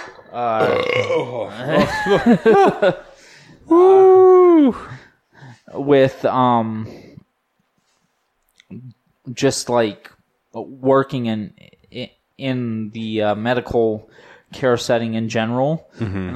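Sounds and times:
speech: 0.3 - 3.1, 3.7 - 5.0, 5.7 - 7.1, 8.7 - 16.3
loud throaty hiccup: 0.5 - 1.4
laughter: 1.5 - 3.1.

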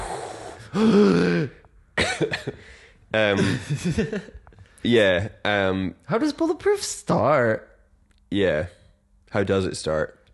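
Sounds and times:
speech: 0.7 - 1.6, 2.2 - 7.7, 8.3 - 10.2
person clearing throat: 0.7 - 2.4
person coughing: 0.7 - 2.6
laughter: 2.0 - 4.4.

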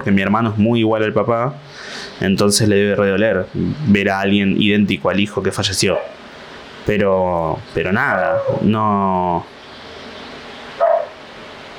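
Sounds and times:
speech: 0.0 - 6.2, 6.9 - 9.6
steady hiss: 0.0 - 11.7
small dog yapping: 10.8 - 11.2.

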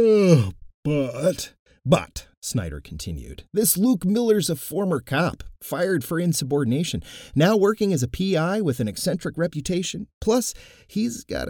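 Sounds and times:
drawn-out yawn voiced as a groan: 0.0 - 1.4
speech: 0.0 - 11.4.

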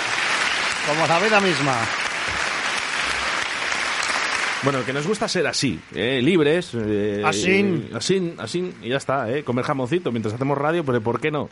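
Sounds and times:
crowd applauding: 0.0 - 5.6
speech: 0.9 - 2.4, 4.6 - 11.5.

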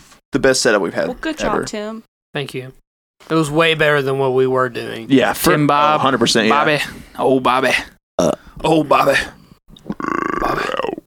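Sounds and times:
speech: 0.4 - 9.4
long rumbling burp into a microphone: 8.2 - 8.6, 9.8 - 11.0.

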